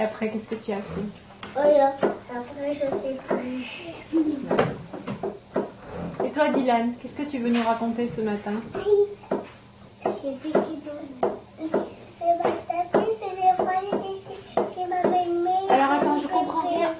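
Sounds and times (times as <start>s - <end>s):
speech: 0.0s - 4.8s, 6.4s - 9.2s, 10.2s - 11.1s
child talking: 1.5s - 4.4s, 8.7s - 9.4s, 10.0s - 16.9s
chair rocking back and forth with legs knocking the floor: 2.0s - 2.2s, 4.3s - 6.8s, 8.6s - 16.2s.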